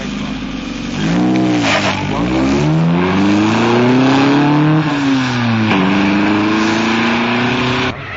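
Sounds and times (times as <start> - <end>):
car engine revving and shifting while driving up and parking: 0.0 - 8.0.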